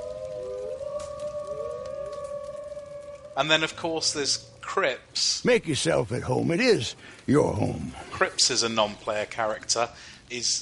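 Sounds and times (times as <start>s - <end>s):
several wolves howling in the distance: 0.0s - 4.7s
speech: 3.4s - 10.5s.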